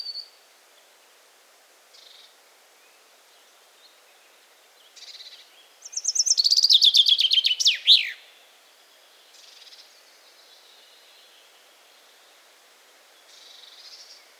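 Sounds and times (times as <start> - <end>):
common chaffinch song with descending trill: 5.8 - 8.2.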